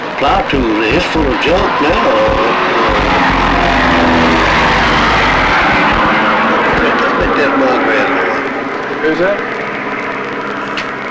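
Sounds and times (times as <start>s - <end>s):
small propeller plane engine drone overhead: 0.0s - 11.1s
speech: 0.2s - 2.8s, 9.0s - 9.6s.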